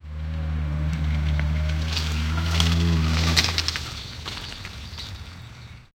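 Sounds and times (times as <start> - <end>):
oxen gently grunting while plowing: 0.2 - 3.8.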